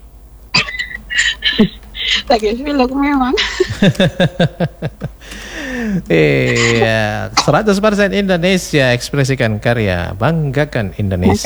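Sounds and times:
caller coughing on a phone call: 0.6 - 2.4, 3.4 - 3.8, 5.4 - 7.6, 11.2 - 11.4
laughter: 0.6 - 11.4
speech: 1.5 - 11.4.

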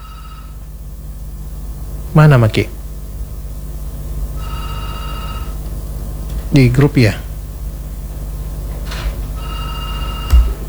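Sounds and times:
speech: 2.1 - 2.8, 6.5 - 7.3
incoming WhatsApp call ringtone: 9.4 - 10.5
noisy background: 10.3 - 10.6.

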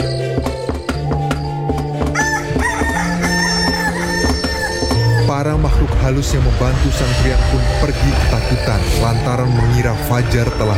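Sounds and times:
wooden pestle pounding into a mortar: 0.3 - 5.1
rooster crowing: 2.2 - 5.3
speech: 6.0 - 10.7.

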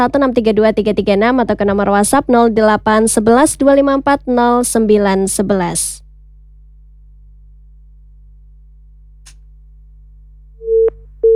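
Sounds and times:
speech: 0.0 - 6.0
phone line tone beeps from a dropped call: 10.6 - 11.3.

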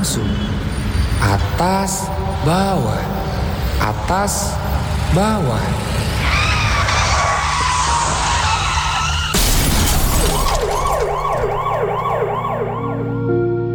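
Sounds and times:
steady traffic noise: 0.0 - 13.2
tires screeching: 0.0 - 13.2
wailing emergency siren: 0.0 - 13.7
speech: 1.3 - 3.2, 3.8 - 6.0
sudden sharp crash: 8.5 - 12.6.

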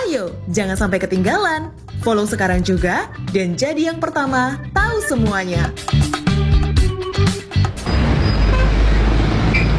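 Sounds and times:
speech: 0.2 - 6.1
road noise: 7.3 - 9.7
car horns honking in a traffic jam: 7.9 - 9.0.

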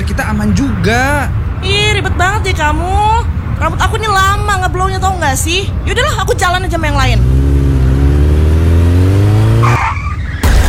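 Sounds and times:
speech: 0.4 - 7.5
motorbike engine revving: 3.7 - 9.8
screeching squeal as the motorbike crashes: 9.5 - 10.5
motorbike crash noise: 10.3 - 10.6.

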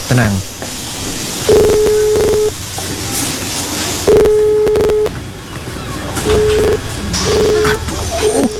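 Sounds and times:
hiss: 0.0 - 5.4
phone dialing beeps: 1.5 - 2.5, 4.1 - 5.1, 6.2 - 7.8.

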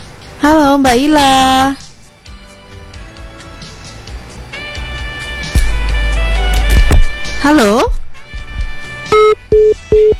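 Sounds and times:
speech: 0.4 - 1.8, 7.4 - 8.0
low telephone line noise: 5.6 - 10.1
telephone busy tone after a call is cut off: 9.1 - 10.1.

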